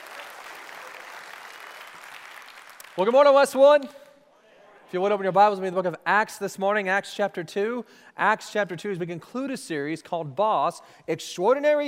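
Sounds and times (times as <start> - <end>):
church congregation applauding: 0.0 - 3.9
speech: 3.0 - 4.0, 4.9 - 11.8.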